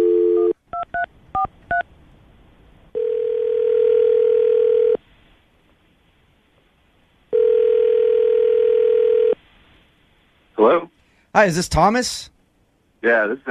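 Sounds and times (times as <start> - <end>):
telephone dial tone: 0.0 - 0.6, 3.0 - 5.0, 7.3 - 9.4
speech: 11.4 - 12.3, 13.0 - 13.4.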